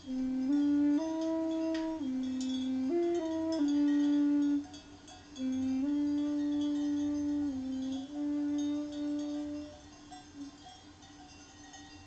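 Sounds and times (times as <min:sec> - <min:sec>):
tenor recorder improvising slow held notes: 0:00.0 - 0:04.8, 0:05.4 - 0:09.8
faint clinking bells of sheep in Sicily: 0:00.0 - 0:12.0
low rustling outdoor background: 0:00.0 - 0:12.0.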